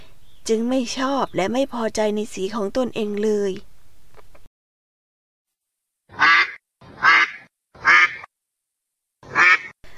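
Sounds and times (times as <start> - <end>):
speech: 0.5 - 3.7
duck quacking loud and nasal: 6.1 - 8.3, 9.2 - 9.8.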